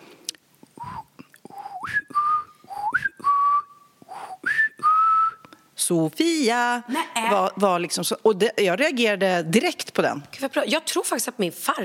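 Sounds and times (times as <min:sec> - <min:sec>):
person whistling a family call signal: 0:00.8 - 0:05.6
speech: 0:05.9 - 0:11.8.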